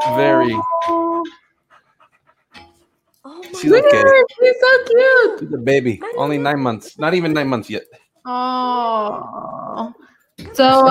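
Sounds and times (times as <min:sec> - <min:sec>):
speech: 0:00.0 - 0:01.4, 0:03.6 - 0:10.8
young female dog whining: 0:00.0 - 0:01.4, 0:03.6 - 0:04.5
young female dog panting: 0:01.2 - 0:04.3.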